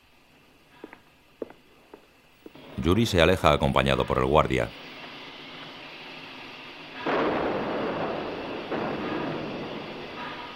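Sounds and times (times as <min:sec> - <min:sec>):
speech: 0:02.8 - 0:04.9
distant cannon fire from the front: 0:06.9 - 0:10.5.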